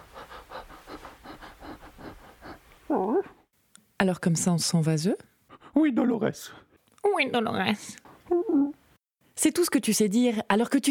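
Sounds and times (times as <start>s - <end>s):
out-of-breath panting: 0.0s - 3.5s, 5.4s - 5.9s
speech: 4.0s - 6.6s, 7.2s - 8.0s, 9.4s - 10.8s.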